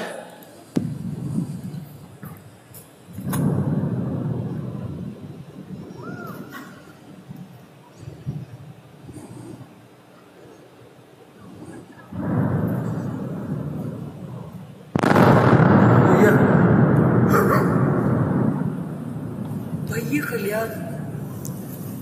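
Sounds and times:
heavy explosions from a nuclear blast with shock wave: 0:00.8 - 0:02.5, 0:03.1 - 0:07.4, 0:12.1 - 0:22.0.

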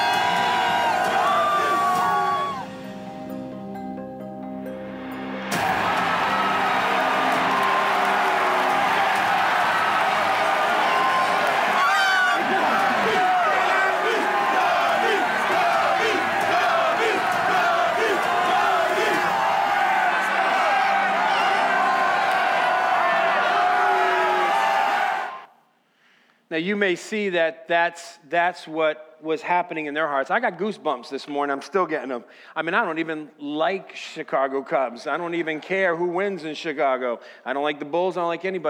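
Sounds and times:
outdoor crowds yelling and cheering in celebration in Chicago: 0:00.0 - 0:03.0, 0:05.5 - 0:25.6
speech: 0:26.6 - 0:38.6.

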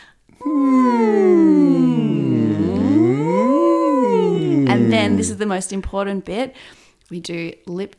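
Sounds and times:
single voice humming a sustained NG sound as a vocal warm-up: 0:00.3 - 0:05.4
speech: 0:05.2 - 0:07.9.

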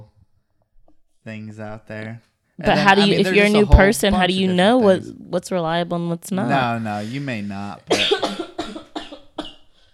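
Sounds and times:
speech: 0:01.2 - 0:08.5
person coughing with breathy wheeze: 0:07.9 - 0:09.7.

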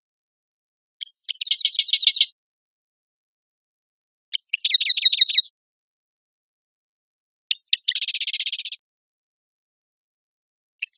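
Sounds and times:
Cistothorus palustris Marsh Wren song: 0:00.9 - 0:02.4, 0:04.2 - 0:05.6, 0:07.4 - 0:08.9, 0:10.7 - 0:10.9.

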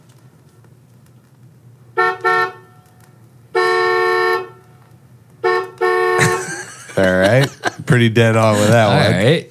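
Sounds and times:
low traffic rumble: 0:00.0 - 0:09.4
car horn honking: 0:02.0 - 0:02.8, 0:03.5 - 0:04.7, 0:05.4 - 0:07.4
laughter: 0:06.2 - 0:09.4
speech: 0:07.0 - 0:09.4.

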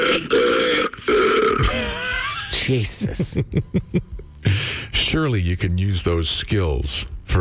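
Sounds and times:
man burping loudly on an emergency phone call: 0:00.0 - 0:02.7
laughter: 0:01.6 - 0:04.2
speech: 0:02.7 - 0:04.2, 0:05.1 - 0:07.4.

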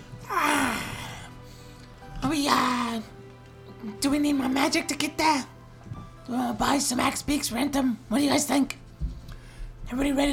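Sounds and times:
voice imitating a long yawn: 0:00.2 - 0:01.4
speech: 0:04.0 - 0:05.6, 0:06.3 - 0:08.8, 0:09.9 - 0:10.3.

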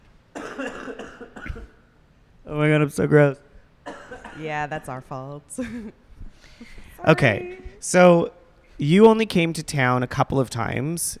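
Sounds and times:
person coughing hard: 0:00.4 - 0:01.8, 0:03.9 - 0:04.6
speech: 0:00.6 - 0:01.4, 0:02.5 - 0:03.4, 0:04.4 - 0:06.0, 0:06.6 - 0:11.1.

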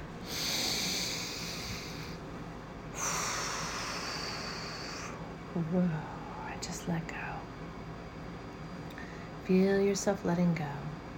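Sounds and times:
deep breath: 0:00.2 - 0:02.2, 0:03.0 - 0:05.2
speech: 0:05.6 - 0:06.2, 0:06.8 - 0:07.3, 0:09.5 - 0:10.9.

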